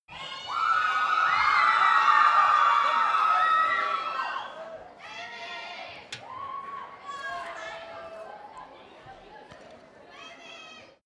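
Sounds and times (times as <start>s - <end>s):
young theatre audience shouting: 0.1s - 8.5s.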